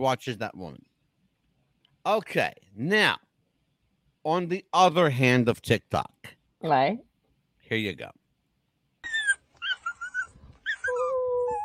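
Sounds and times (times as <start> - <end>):
speech: 0.0 - 0.9, 2.0 - 3.2, 4.2 - 7.1, 7.7 - 8.2
abandoned dog whimpering and whining in a played video: 9.0 - 11.6.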